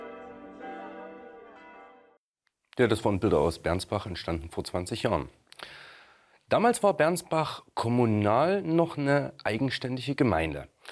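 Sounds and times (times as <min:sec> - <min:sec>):
new church bells ringing: 0:00.0 - 0:02.2
speech: 0:02.8 - 0:05.8, 0:06.5 - 0:10.9.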